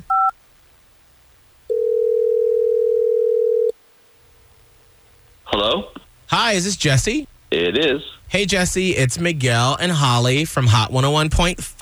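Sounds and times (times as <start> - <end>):
telephone dial tone: 1.7 - 3.7
speech: 6.4 - 11.8.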